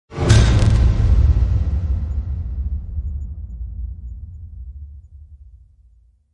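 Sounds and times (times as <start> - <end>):
blast smash impact for trailer sound design: 0.1 - 5.6.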